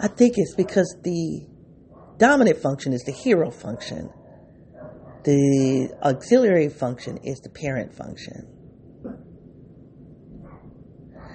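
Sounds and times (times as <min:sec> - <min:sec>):
speech: 0:00.0 - 0:01.5, 0:02.2 - 0:04.2, 0:05.2 - 0:09.2
dogs barking at one another: 0:00.4 - 0:01.1, 0:01.9 - 0:02.4, 0:03.0 - 0:05.3, 0:05.9 - 0:06.4, 0:10.4 - 0:11.3.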